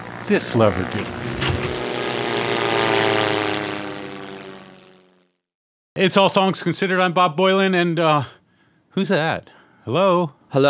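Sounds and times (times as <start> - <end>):
propeller airplane engine droning while landing: 0.0 - 5.4
speech: 0.3 - 1.4, 6.0 - 8.4, 9.0 - 10.6.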